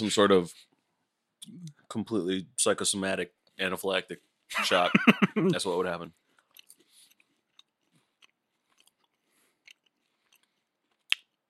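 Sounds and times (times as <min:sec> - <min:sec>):
speech: 0:00.0 - 0:00.7, 0:01.4 - 0:06.2
laughter: 0:04.5 - 0:05.8
chewing a banana flavored Rice Krispie treat: 0:06.3 - 0:11.4.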